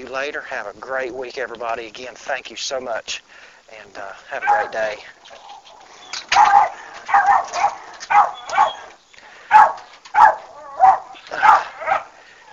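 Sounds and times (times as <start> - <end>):
speech: 0.1 - 5.5, 6.3 - 8.8
dog barking: 4.4 - 5.6, 6.3 - 8.9, 9.5 - 12.1.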